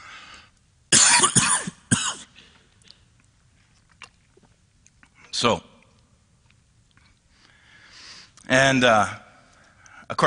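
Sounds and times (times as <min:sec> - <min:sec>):
quiet breathing: 0:00.0 - 0:00.7, 0:07.0 - 0:08.5, 0:09.3 - 0:10.1
faint noise: 0:00.0 - 0:10.2
loud harsh raspy cough: 0:00.9 - 0:02.6
speech: 0:05.4 - 0:05.7, 0:08.5 - 0:09.2.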